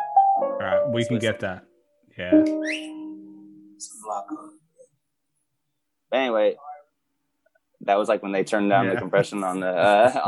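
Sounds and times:
speech: 0.6s - 3.0s, 3.8s - 4.6s, 6.1s - 6.7s, 7.8s - 10.2s
steady whistle tone: 2.5s - 3.1s.

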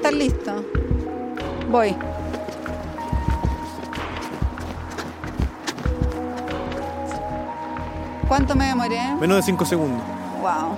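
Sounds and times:
street traffic: 0.0s - 10.7s
speech: 0.1s - 0.8s, 1.7s - 2.1s, 8.3s - 10.7s
quick running footsteps slapping across pavement: 2.1s - 7.5s.

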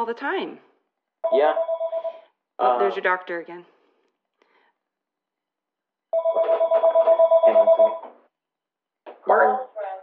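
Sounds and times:
speech: 0.0s - 1.8s, 2.6s - 3.7s, 9.3s - 9.6s
telephone ringing with a trilling electronic bell: 1.2s - 2.3s, 6.1s - 8.1s.

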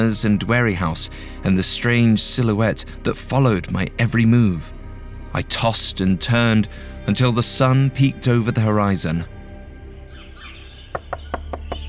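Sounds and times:
speech: 0.0s - 9.4s
sharp knocks on a door: 10.9s - 11.8s.

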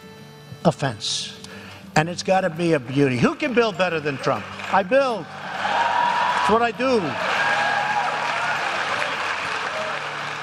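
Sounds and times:
speech: 0.6s - 1.4s, 2.0s - 5.4s, 6.4s - 7.3s
large crowd cheering at a rally in Iowa: 3.4s - 10.4s.

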